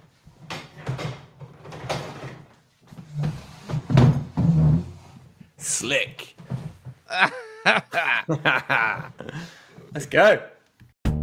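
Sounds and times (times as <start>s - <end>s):
creaky chair being moved and scraping: 0.3s - 5.5s
speech: 5.7s - 6.4s, 7.1s - 9.2s, 10.0s - 10.5s
laughter: 7.1s - 9.6s.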